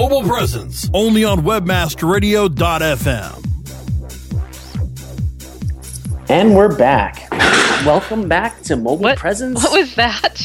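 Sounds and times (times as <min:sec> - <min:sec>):
speech: 0:00.0 - 0:03.5, 0:06.3 - 0:10.4
chair falling onto concrete office floor: 0:07.3 - 0:08.0.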